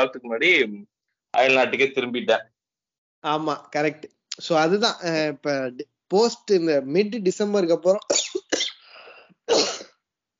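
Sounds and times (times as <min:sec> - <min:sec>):
speech: 0:00.0 - 0:02.5, 0:03.2 - 0:08.7
person coughing harshly: 0:09.5 - 0:09.9.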